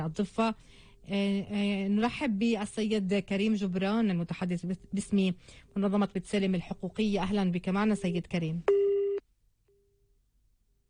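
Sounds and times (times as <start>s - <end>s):
speech: 0.0s - 8.8s
telephone busy signal after a cut-off line: 8.7s - 9.2s.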